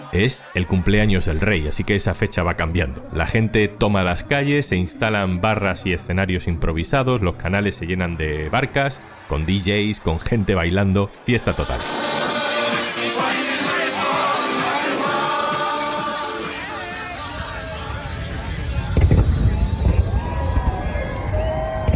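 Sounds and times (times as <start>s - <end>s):
crowd noise and chatter during Independence Day celebrations: 0.0s - 6.8s, 7.4s - 21.9s
speech: 0.1s - 12.3s
fireworks bursting during Independence Day celebrations in the United States: 18.7s - 21.9s.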